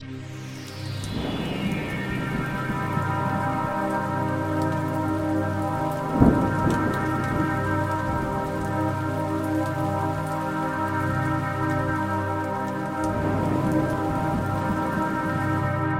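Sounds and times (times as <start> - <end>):
rippling ambient synth pad: 0.0 - 15.9.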